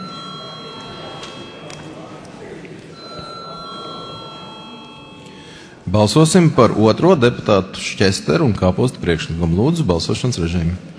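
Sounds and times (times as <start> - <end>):
parliament voting call electric bell ringing: 0.0 - 2.1, 3.0 - 5.6
low murmur of voices in a parliament chamber: 0.0 - 10.9
speech: 5.9 - 10.9.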